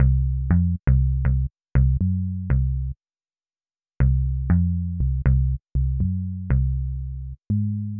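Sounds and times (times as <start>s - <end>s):
raw bass: 0.0s - 3.0s, 4.0s - 7.9s.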